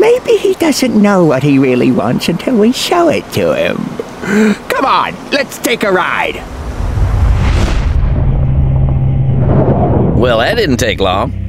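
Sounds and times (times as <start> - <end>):
speech: 0.7 - 6.6, 10.2 - 11.4
explosion: 6.4 - 10.8.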